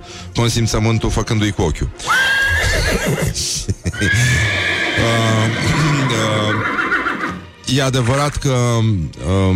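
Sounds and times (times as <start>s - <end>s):
speech: 0.4s - 6.8s, 7.7s - 9.5s
horse neighing in shrill quavering whinnies: 2.0s - 7.5s
laughter: 2.6s - 4.6s.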